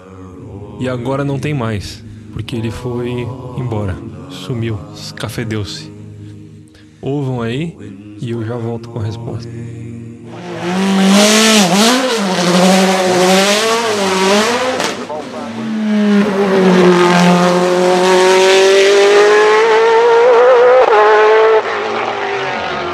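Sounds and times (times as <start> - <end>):
speech: 0.8 - 5.9, 7.0 - 9.9
Mercedes-Benz CLK GTR race car engine roaring: 10.2 - 22.9.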